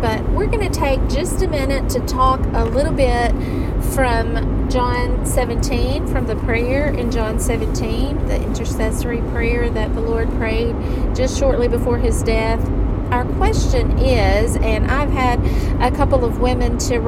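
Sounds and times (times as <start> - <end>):
low rumble of a car interior while driving: 0.0 - 17.0
speech: 0.0 - 17.0.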